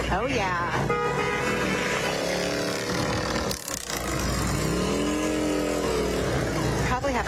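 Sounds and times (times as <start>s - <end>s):
speech: 0.1s - 1.3s
group of motorcycles rumbling past: 1.4s - 7.0s.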